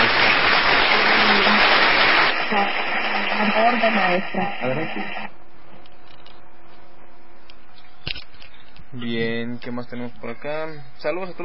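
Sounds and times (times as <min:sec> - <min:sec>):
applause for a teacher: 0:00.0 - 0:03.4
speech: 0:03.6 - 0:05.4, 0:08.9 - 0:11.4.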